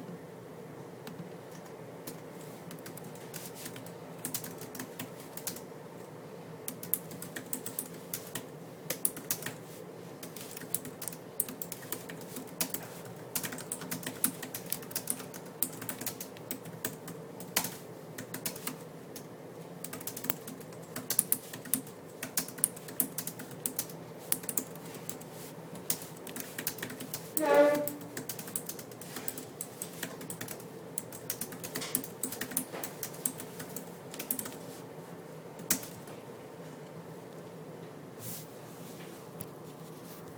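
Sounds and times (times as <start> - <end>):
air vent in a library: 0.1 - 40.3
typing in a library: 1.1 - 5.7, 6.7 - 9.6, 10.2 - 34.6, 35.6 - 36.1
chair moving in a library: 27.4 - 28.2.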